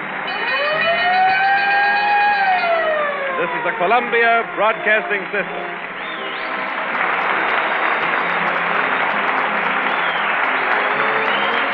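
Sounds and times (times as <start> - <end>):
dense noisy background: 0.0 - 11.7
siren wailing as a gasoline advertising signal: 0.3 - 5.9
speech: 3.5 - 5.9.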